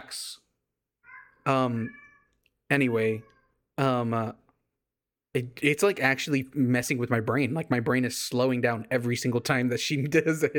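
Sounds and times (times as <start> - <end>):
speech: 0.1 - 0.4, 1.5 - 2.0, 2.7 - 4.4, 5.3 - 10.5
cat meowing loudly: 1.0 - 3.6.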